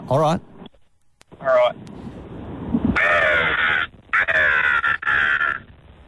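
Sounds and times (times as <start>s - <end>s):
speech: 0.1s - 0.5s, 1.4s - 2.1s
person imitating seagull squawking calls: 3.0s - 5.7s.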